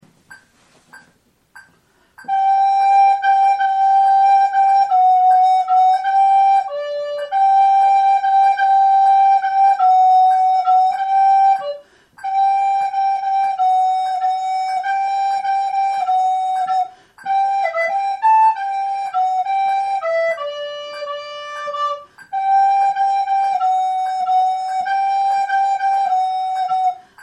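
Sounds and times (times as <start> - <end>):
flute playing a gavotte: 2.2 - 27.2.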